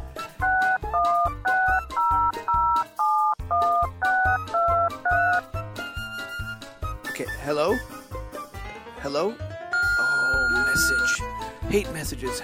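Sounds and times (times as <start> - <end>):
telephone keypad tones dialing a number: 0.4 - 5.4, 9.8 - 11.2
speech: 7.4 - 7.9, 9.0 - 9.5, 10.8 - 12.4.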